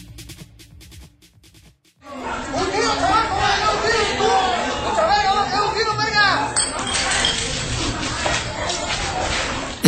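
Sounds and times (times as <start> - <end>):
crowd shouting and clamoring in a street brawl: 2.0 - 9.8.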